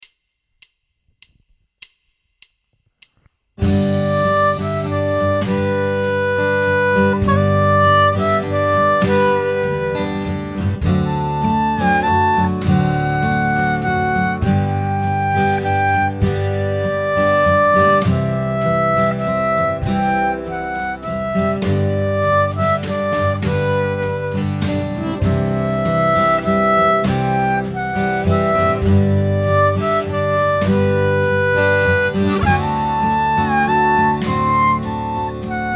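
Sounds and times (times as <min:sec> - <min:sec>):
G 100 harp: 0:03.6 - 0:35.7.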